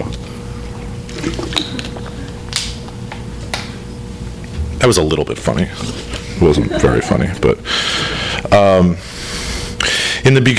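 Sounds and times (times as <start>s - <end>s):
person drinking water with sips, gulps and clicks: 1.1s - 2.4s
speech: 1.2s - 1.9s, 4.8s - 9.1s, 10.2s - 10.5s.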